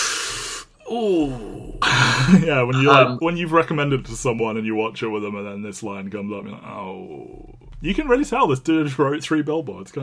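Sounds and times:
person sharply sucking air in through clenched teeth: 0.0 - 0.8
short falling groan acting out a wince: 0.8 - 3.1
speech: 0.9 - 10.0.

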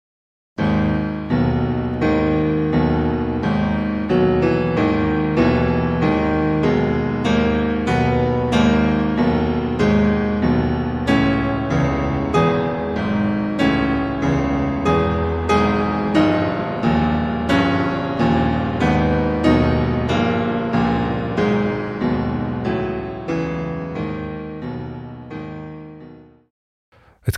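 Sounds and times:
slow heavy classical piano music depicting an ox cart: 0.6 - 26.5.

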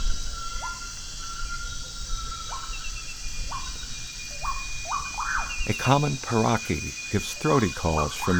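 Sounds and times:
great tinamou plaintive rising whistled notes: 0.0 - 8.3
insects hissing in a humid forest: 0.0 - 8.3
speech: 5.7 - 8.3.

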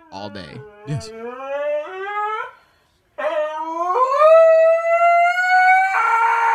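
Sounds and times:
husky howling played through a phone speaker: 0.0 - 2.6, 3.2 - 6.5
speech: 0.1 - 1.6.

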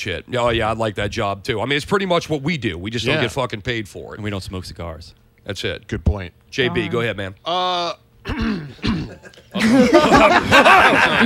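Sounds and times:
speech: 0.0 - 11.2
person clearing throat: 8.2 - 9.8
laughter: 9.0 - 11.2.

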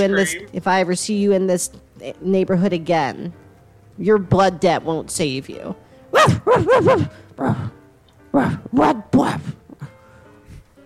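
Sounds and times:
speech: 0.0 - 3.4, 4.0 - 7.8, 8.4 - 9.6
dog barking: 6.1 - 7.1.

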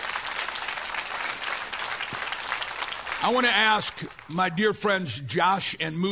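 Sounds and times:
large crowd applauding: 0.0 - 4.4
speech: 3.2 - 6.1.

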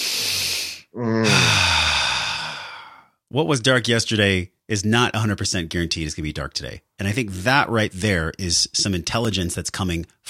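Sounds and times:
people taking a deep breath together: 0.0 - 3.1
voiced sigh on a breathy exhale: 0.0 - 3.2
speech: 3.3 - 10.2.

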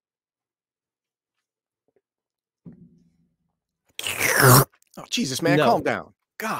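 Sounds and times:
person gulping water: 3.9 - 4.9
loud harsh hissing slurp of drinking water: 4.0 - 4.8
speech: 4.4 - 6.5.

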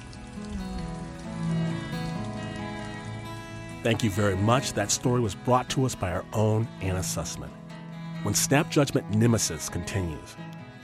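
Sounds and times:
heavy rain on a dirt road: 0.0 - 6.2
speech: 3.8 - 7.6, 8.2 - 10.5.

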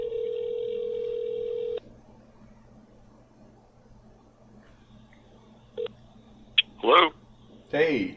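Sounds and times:
steady phone tone: 0.0 - 1.8
speech: 6.9 - 8.1.

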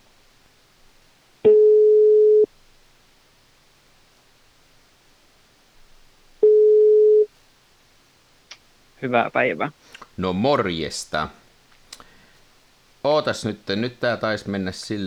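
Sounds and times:
telephone ringback tone of mid-pitched beeps: 1.5 - 2.5, 6.4 - 7.3
speech: 9.0 - 11.4, 13.0 - 15.0.

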